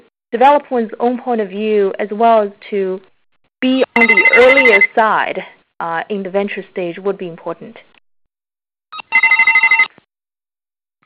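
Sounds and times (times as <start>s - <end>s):
speech: 0.3s - 7.9s
electric stock exchange bell ringing for an IPO listing: 4.0s - 4.9s, 9.1s - 9.9s.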